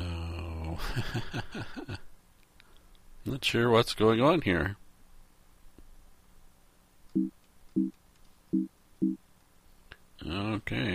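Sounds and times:
speech: 0:00.8 - 0:02.1, 0:03.2 - 0:04.8, 0:07.2 - 0:09.2, 0:10.2 - 0:10.9
computer error alert boinks from arrow key presses: 0:07.2 - 0:07.9, 0:08.6 - 0:09.2.

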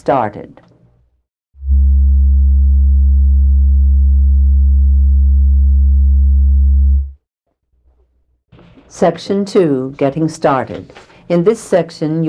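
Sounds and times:
speech: 0:00.0 - 0:00.6, 0:08.9 - 0:12.2
steady low-pitched section marker tone on instructional tape: 0:01.6 - 0:07.2.

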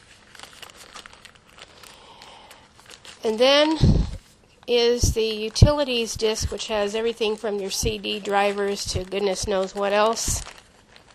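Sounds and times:
plastic bag holding software CDs crinkling as it is handled: 0:00.0 - 0:11.1
speech: 0:03.2 - 0:04.0, 0:04.7 - 0:10.6.

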